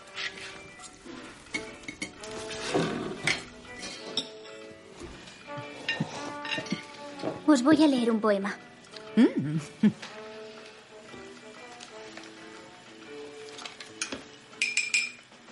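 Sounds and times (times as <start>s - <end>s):
dishes and cutlery clinking as a meal is served: 0.1s - 7.5s, 13.4s - 15.4s
speech: 7.5s - 8.6s, 9.2s - 10.1s.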